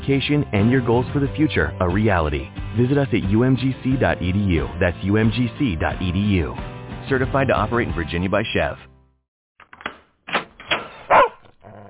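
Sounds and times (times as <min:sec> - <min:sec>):
speech: 0:00.1 - 0:08.9
dog barking at its owner arriving home: 0:11.1 - 0:11.8.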